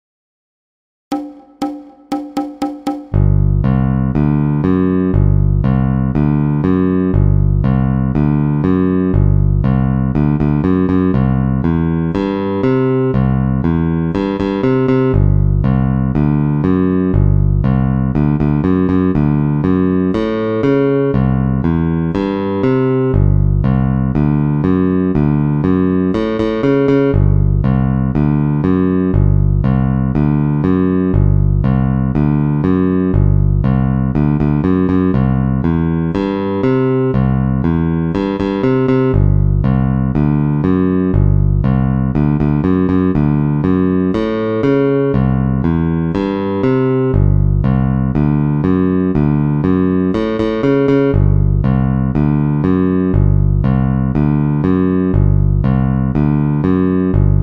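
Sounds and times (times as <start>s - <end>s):
metronome clicking in four-four time: 1.1s - 3.2s
twelve-bar blues bass line: 1.1s - 57.4s.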